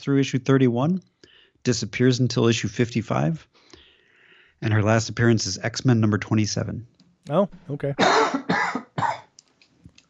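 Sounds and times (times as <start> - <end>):
speech: 0.0 - 3.7, 4.6 - 8.4
faint wheezy breaths: 1.2 - 1.6, 3.5 - 4.6
harsh coughs: 8.0 - 9.4.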